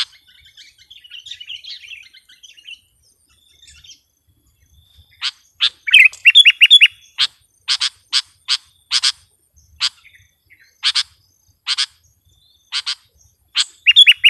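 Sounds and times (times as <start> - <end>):
sooty-headed bulbul chirping and warbling: 5.2 - 14.2.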